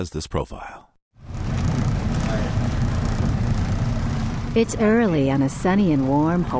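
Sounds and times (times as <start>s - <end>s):
speech: 0.0s - 0.9s, 4.5s - 6.5s
wind noise: 1.2s - 5.0s
research boat engine rumbling: 1.2s - 6.5s
water wash: 1.2s - 6.5s.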